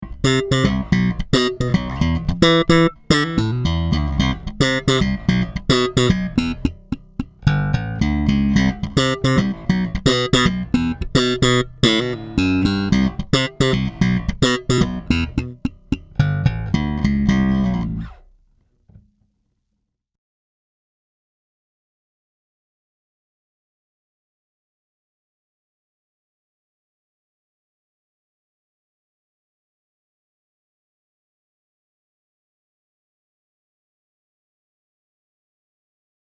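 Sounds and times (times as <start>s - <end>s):
active slap bass guitar tone: 0.0s - 18.3s.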